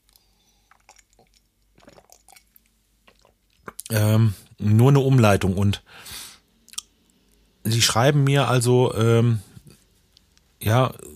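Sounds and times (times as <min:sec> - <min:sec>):
sips and swallows of coffee: 0:00.0 - 0:04.0
low steady hum: 0:00.0 - 0:11.1
speech: 0:03.9 - 0:06.2, 0:07.6 - 0:09.5, 0:10.6 - 0:11.1.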